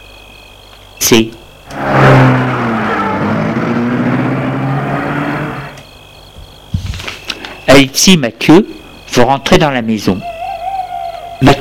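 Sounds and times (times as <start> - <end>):
speech: 1.1 - 2.4, 7.8 - 10.3, 11.4 - 11.6
car engine starting, revving and driving away: 1.7 - 5.8.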